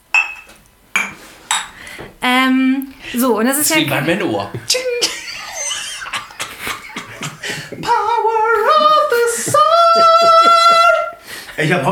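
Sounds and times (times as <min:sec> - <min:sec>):
glasses clinking in a toast: 0:00.1 - 0:01.7
speech: 0:02.5 - 0:04.8, 0:11.6 - 0:11.9
laughter: 0:04.6 - 0:11.2.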